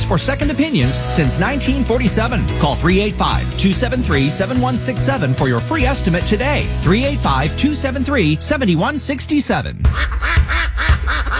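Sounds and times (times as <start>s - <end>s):
speech: 0.1s - 11.3s
ducks quacking at a bird refuge in spring: 9.9s - 11.3s.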